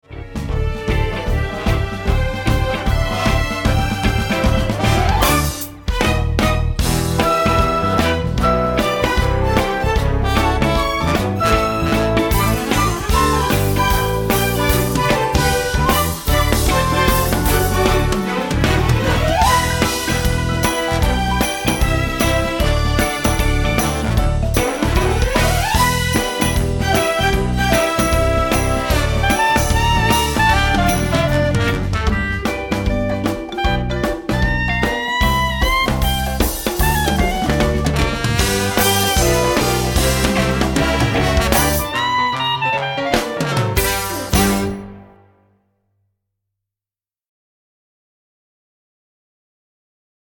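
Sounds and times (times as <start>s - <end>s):
musical accompaniment: 0.0s - 45.6s.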